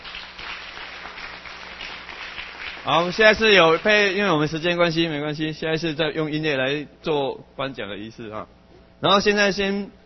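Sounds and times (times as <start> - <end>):
audience applauding at a children's award ceremony: 0.0 - 4.2
speech: 2.8 - 10.0.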